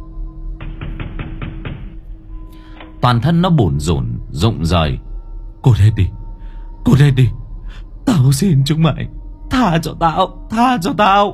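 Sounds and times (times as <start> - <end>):
heavy pounding knocks on a house door at night: 0.5 - 2.2
speech: 3.0 - 5.0, 5.6 - 6.2, 6.8 - 11.3.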